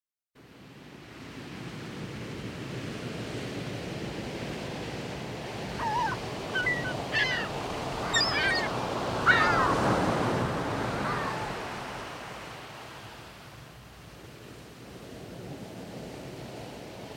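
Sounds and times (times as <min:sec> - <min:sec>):
constant surf and breaking waves by the sea: 0:00.4 - 0:17.1
gull calls by the sea: 0:05.7 - 0:11.7.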